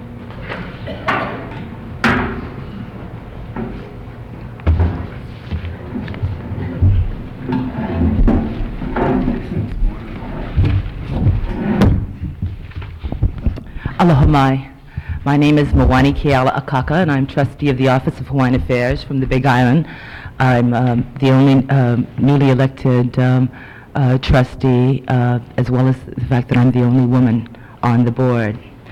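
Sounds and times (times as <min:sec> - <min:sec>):
people shuffling in a room: 0:00.0 - 0:01.0, 0:02.4 - 0:16.1
chair dragged and bumped into place: 0:04.7 - 0:14.3
speech: 0:14.0 - 0:28.7.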